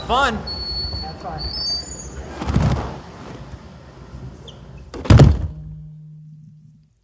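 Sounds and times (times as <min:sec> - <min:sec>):
speech: 0:00.1 - 0:00.5, 0:01.2 - 0:01.8
heavy-duty reinforced anechoic chamber doors slamming shut: 0:04.9 - 0:05.8
low steady hum: 0:05.0 - 0:07.0.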